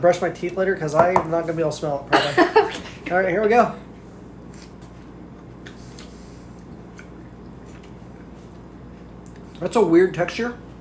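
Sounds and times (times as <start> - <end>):
speech: 0.0 - 3.9, 9.6 - 10.6
steady low hum: 0.0 - 10.7
wet chewing of food from a jar: 4.4 - 9.6.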